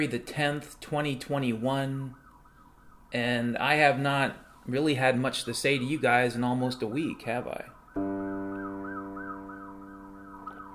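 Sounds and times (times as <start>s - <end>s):
speech: 0.0s - 2.2s, 3.1s - 8.1s
ambulance siren wailing outside a window: 1.8s - 3.5s, 7.0s - 10.7s.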